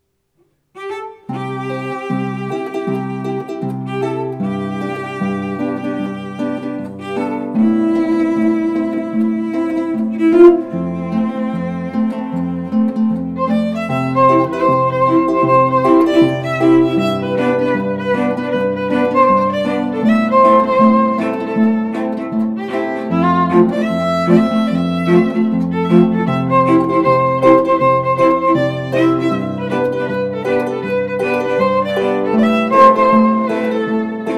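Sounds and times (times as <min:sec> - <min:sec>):
harp trio playing: 0:01.3 - 0:34.3.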